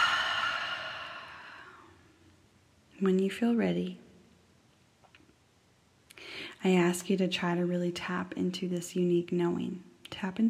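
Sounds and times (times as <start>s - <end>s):
slow exhale during a guided breathing exercise: 0.0s - 2.0s
speech: 3.0s - 4.0s, 6.6s - 10.4s.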